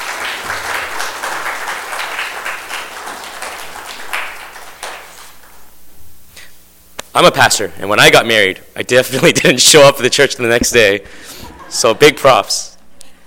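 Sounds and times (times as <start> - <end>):
room full of people applauding: 0.0 - 5.7
speech: 7.2 - 12.7
laughter: 11.2 - 13.0.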